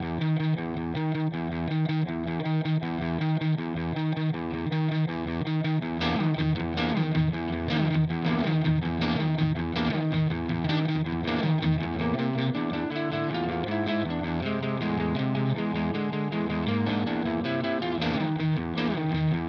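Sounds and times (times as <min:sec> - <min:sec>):
germanium fuzz electric guitar with vintage pickups at low gain: 0:00.0 - 0:19.4.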